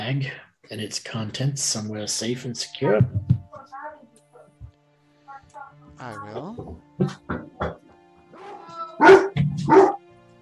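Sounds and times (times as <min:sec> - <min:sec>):
speech: 0:00.0 - 0:03.8, 0:06.0 - 0:07.8, 0:09.0 - 0:09.9
large dog barking: 0:08.4 - 0:10.0.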